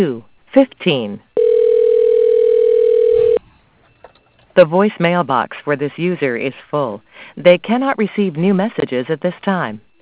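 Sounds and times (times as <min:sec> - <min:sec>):
speech: 0:00.0 - 0:01.3, 0:04.6 - 0:09.9
telephone dial tone during an automated phone-menu call: 0:01.4 - 0:03.4.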